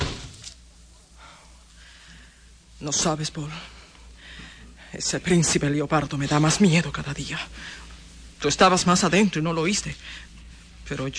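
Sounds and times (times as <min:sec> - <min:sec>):
door shutting with a heavy thud: 0:00.0 - 0:00.6
speech: 0:02.8 - 0:03.8, 0:04.9 - 0:07.8, 0:08.4 - 0:10.3, 0:10.9 - 0:11.1.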